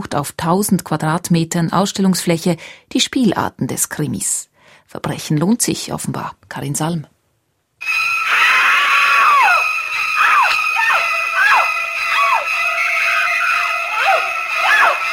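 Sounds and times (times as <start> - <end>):
speech: 0.0 - 7.2
shrill violin stabs: 7.8 - 15.1
sustained high string tone: 7.8 - 15.1
woman screaming: 8.2 - 15.1.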